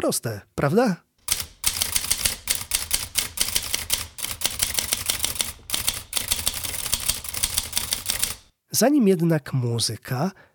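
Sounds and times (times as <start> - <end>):
speech: 0.0 - 1.1, 8.7 - 10.5
typewriter mechanism clacking: 1.2 - 8.5.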